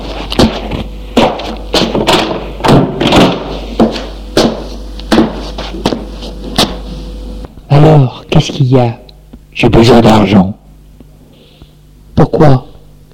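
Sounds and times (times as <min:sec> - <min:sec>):
thuds and clacks: 0:00.4 - 0:06.0
door being shut: 0:01.8 - 0:03.6
speech: 0:07.8 - 0:09.0, 0:09.6 - 0:10.6, 0:12.4 - 0:12.7.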